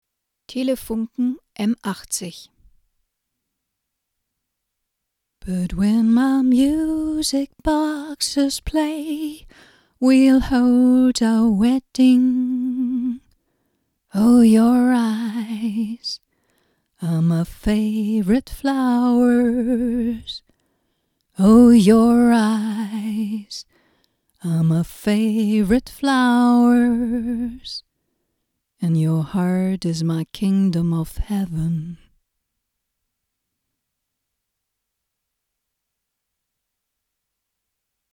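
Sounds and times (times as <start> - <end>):
person singing into a Telefunken M80 microphone: 5.4 - 13.2, 14.1 - 16.2, 17.0 - 20.4, 21.4 - 23.6, 24.4 - 27.8, 28.8 - 32.1.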